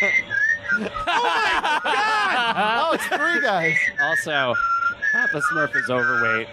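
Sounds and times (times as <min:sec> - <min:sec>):
speech: 0:00.0 - 0:00.2, 0:01.8 - 0:06.5
men whistling a tune: 0:00.0 - 0:01.0, 0:02.9 - 0:06.5
laughter: 0:00.0 - 0:03.7.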